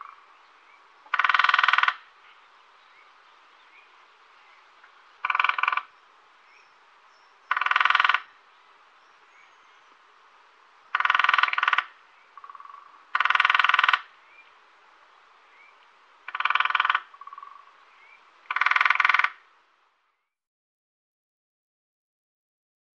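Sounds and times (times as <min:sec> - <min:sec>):
lesser spotted woodpecker drumming in short rapid tapping rolls: 0:01.0 - 0:02.1, 0:04.8 - 0:06.0, 0:07.4 - 0:08.4, 0:10.9 - 0:14.2, 0:16.2 - 0:17.7, 0:18.4 - 0:19.5.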